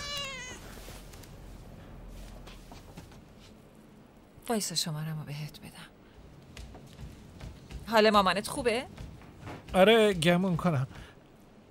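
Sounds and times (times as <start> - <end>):
cat meowing: 0.0 - 0.7
speech: 4.5 - 5.9, 7.9 - 9.0, 9.7 - 11.1.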